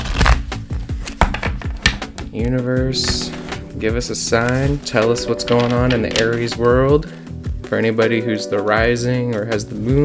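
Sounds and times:
tarot cards being shuffled: 0:00.0 - 0:02.3, 0:03.0 - 0:03.6, 0:04.3 - 0:06.8
speech: 0:02.3 - 0:10.0.

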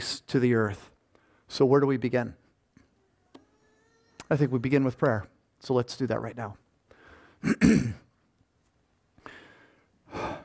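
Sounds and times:
speech: 0:00.0 - 0:00.9, 0:01.5 - 0:02.4, 0:04.3 - 0:06.6, 0:07.4 - 0:08.0
person clearing throat and coughing: 0:07.4 - 0:08.1.

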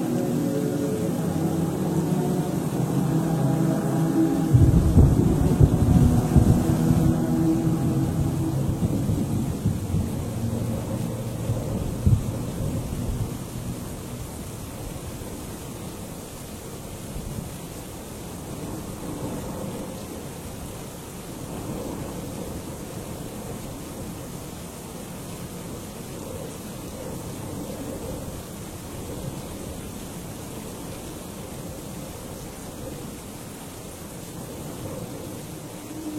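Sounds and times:
thunder rolling: 0:00.0 - 0:15.0
rain and wind in a monastery: 0:00.0 - 0:36.1.

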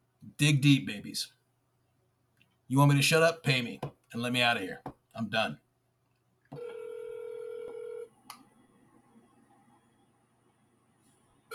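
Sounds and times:
speech: 0:00.4 - 0:01.4, 0:02.7 - 0:05.6
steady electronic telephone tone of an unanswered call: 0:06.6 - 0:08.1.

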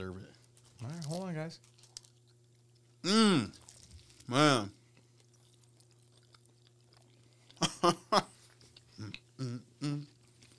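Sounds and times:
speech: 0:00.0 - 0:01.8, 0:03.0 - 0:03.6, 0:04.3 - 0:04.8, 0:07.8 - 0:08.3, 0:09.0 - 0:10.1
crunchy chewing of snack: 0:00.3 - 0:10.5
short murmured vocal sounds: 0:03.0 - 0:03.6, 0:09.0 - 0:10.2.

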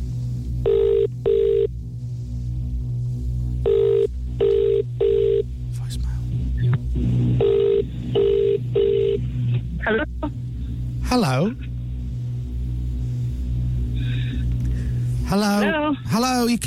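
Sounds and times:
steady low hum: 0:00.0 - 0:16.6
telephone ringing tone on an outgoing call: 0:00.6 - 0:01.7, 0:03.6 - 0:05.4, 0:07.4 - 0:09.2.

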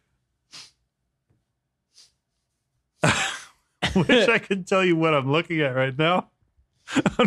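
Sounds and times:
man coughing after choking on a drink: 0:03.0 - 0:04.6, 0:06.9 - 0:07.2
laughter: 0:03.0 - 0:06.2, 0:06.9 - 0:07.2
speech: 0:04.0 - 0:06.3, 0:06.9 - 0:07.2.

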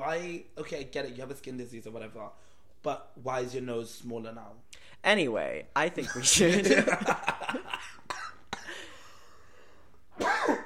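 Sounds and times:
speech: 0:00.1 - 0:08.0
harsh rasping coughs: 0:08.1 - 0:08.9, 0:10.1 - 0:10.6.

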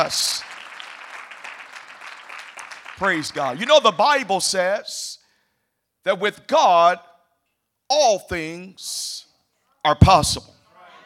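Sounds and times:
speech: 0:00.0 - 0:00.5, 0:03.0 - 0:05.1, 0:06.0 - 0:07.1, 0:07.9 - 0:10.6
crowd applauding guests: 0:00.0 - 0:03.9.

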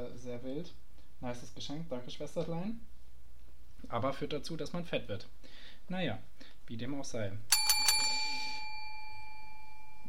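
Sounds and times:
speech: 0:00.1 - 0:03.0, 0:03.8 - 0:07.7
small bell ringing: 0:07.5 - 0:10.0.

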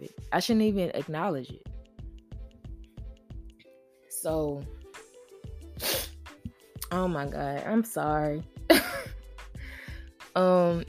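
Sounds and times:
speech: 0:00.0 - 0:01.6, 0:04.2 - 0:04.8, 0:06.9 - 0:08.8, 0:10.4 - 0:10.8
nasal sniff: 0:05.8 - 0:06.3.

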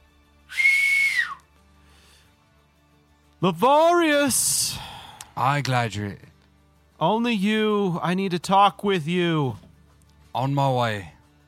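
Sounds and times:
shrill whistle blast blown from a ship's helm: 0:00.5 - 0:01.5
speech: 0:03.4 - 0:06.3, 0:07.0 - 0:09.6, 0:10.3 - 0:11.2.

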